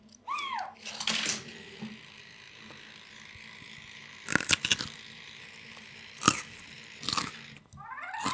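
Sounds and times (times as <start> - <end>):
faint squeak: 0.2 - 1.4
quiet chewing: 1.8 - 8.3
carrot crunching: 2.6 - 8.3.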